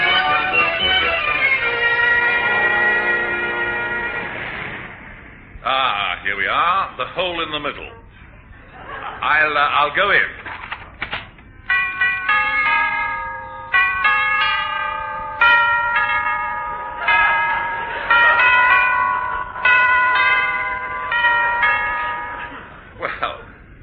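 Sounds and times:
unusual shop doorbell chiming melody: 0:00.0 - 0:04.1, 0:11.6 - 0:23.0
speech: 0:06.5 - 0:08.0, 0:09.2 - 0:10.4
laughter: 0:08.3 - 0:09.7, 0:17.0 - 0:23.5.

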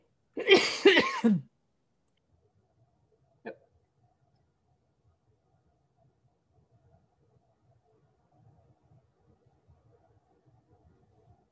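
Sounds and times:
person coughing after tea went down the wrong way: 0:00.4 - 0:01.5.

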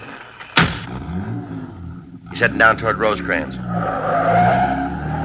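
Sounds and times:
car engine roar: 0:00.6 - 0:05.2
speech: 0:02.4 - 0:04.5
car tire squeal turning around a bend: 0:03.4 - 0:05.2.

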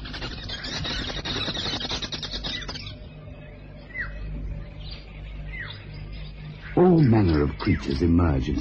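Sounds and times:
chorus of social weaver chirps: 0:00.0 - 0:08.5
low rumble: 0:00.0 - 0:08.5
speech: 0:06.8 - 0:08.5.

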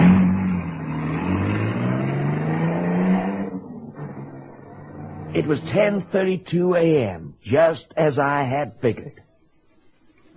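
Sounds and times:
getaway car engine roaring and revving as it accelerates away: 0:00.0 - 0:06.3
speech: 0:05.4 - 0:09.2.

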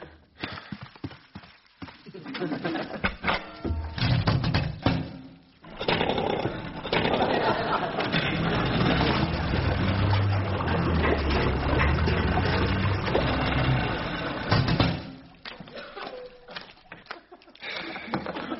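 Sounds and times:
water sounds: 0:00.2 - 0:03.2, 0:03.9 - 0:18.5
laughter: 0:02.0 - 0:03.2, 0:07.0 - 0:08.6, 0:15.7 - 0:18.5
outboard motor running: 0:07.9 - 0:15.3.

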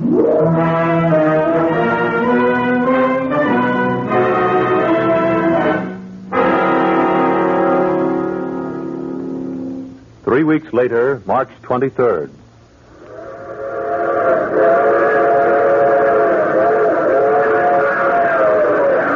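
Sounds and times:
train whistle in a long wavering blast: 0:00.0 - 0:09.4, 0:13.0 - 0:19.0
speech: 0:10.6 - 0:12.4.

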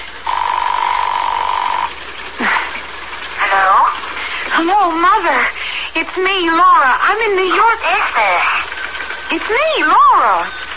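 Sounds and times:
steady ringback tone over a muffled phone line: 0:00.2 - 0:02.0
speech: 0:04.6 - 0:08.6, 0:09.3 - 0:10.6.

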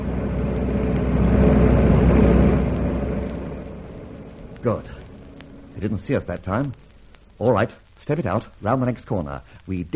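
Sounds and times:
car engine rumbling as the vehicle passes by: 0:00.0 - 0:07.0
speech: 0:04.6 - 0:05.0, 0:05.8 - 0:06.8, 0:07.4 - 0:09.9.

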